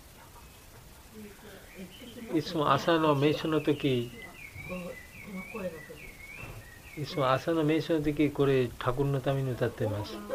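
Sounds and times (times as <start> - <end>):
murmur of voices: 0.0 - 10.3
speech: 1.2 - 6.1, 7.0 - 10.3
bird singing a thin wavering high whistle: 3.3 - 7.3.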